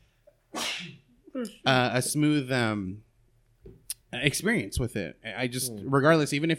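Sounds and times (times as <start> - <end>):
person sneezing: 0.5 - 1.1
speech: 0.8 - 3.1, 4.1 - 6.5.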